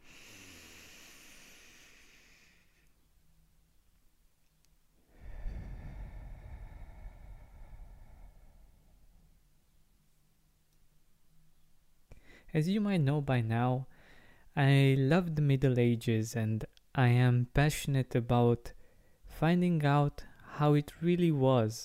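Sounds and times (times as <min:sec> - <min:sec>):
soft airy inhale through the nose: 0:00.0 - 0:02.9, 0:05.1 - 0:09.2
long full exhale through the mouth: 0:00.0 - 0:03.0, 0:05.1 - 0:09.2
speech: 0:12.5 - 0:13.9, 0:14.6 - 0:18.8, 0:19.4 - 0:21.8.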